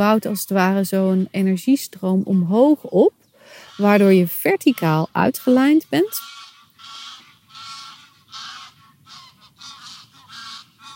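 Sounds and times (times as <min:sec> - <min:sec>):
speech: 0:00.0 - 0:03.2, 0:03.8 - 0:06.4
geese honking: 0:03.4 - 0:10.9.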